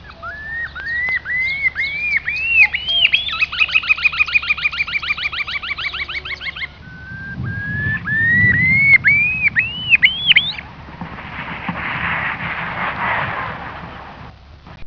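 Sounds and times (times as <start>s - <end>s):
Far Eastern curlew Numenius madagascariensis calling: 0.0s - 11.8s
hiss of noise: 6.6s - 14.8s.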